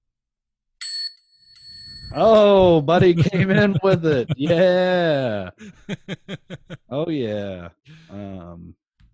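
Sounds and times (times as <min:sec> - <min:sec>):
bright high bell ringing: 0:00.8 - 0:02.6
speech: 0:02.1 - 0:08.8
laughter: 0:02.3 - 0:07.6.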